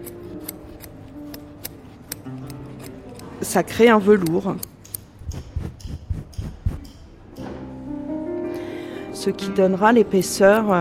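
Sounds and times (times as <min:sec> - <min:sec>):
curved scissors snipping rug yarn loops: 0:00.0 - 0:07.0, 0:10.0 - 0:10.7
speech: 0:03.4 - 0:04.7, 0:09.2 - 0:10.7.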